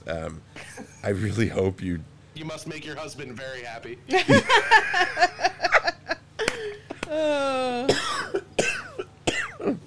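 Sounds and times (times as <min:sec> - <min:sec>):
speech: 0:00.1 - 0:05.6
laughter: 0:04.1 - 0:06.9
person coughing: 0:07.8 - 0:09.8.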